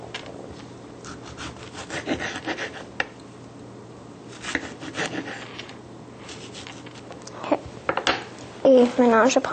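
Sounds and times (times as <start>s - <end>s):
knife cutting tomatoes into pieces: 1.0s - 3.0s, 4.3s - 5.6s, 6.2s - 7.1s
speech: 8.8s - 9.5s.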